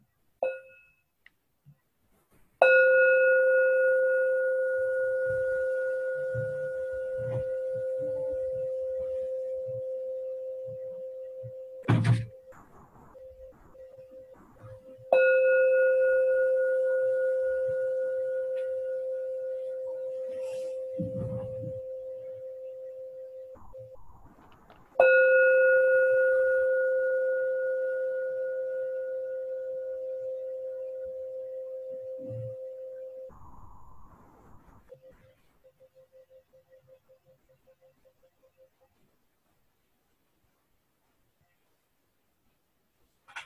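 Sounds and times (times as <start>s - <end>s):
meditation bell struck and ringing: 2.6s - 11.9s, 15.1s - 23.6s, 25.0s - 33.3s.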